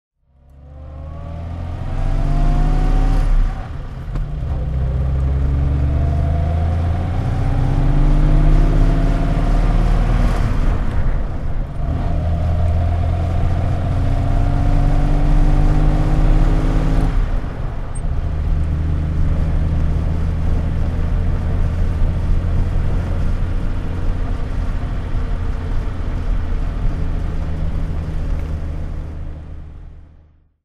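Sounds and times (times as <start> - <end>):
Jaguar MkIV 25 saloon driving: 0.2 - 30.5.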